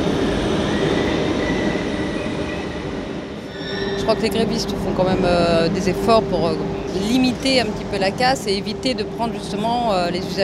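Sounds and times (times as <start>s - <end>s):
commuter train wheels rumbling on rails: 0.0s - 10.4s
faint metallic squealing of train wheels: 3.4s - 7.1s
speech: 4.1s - 10.4s.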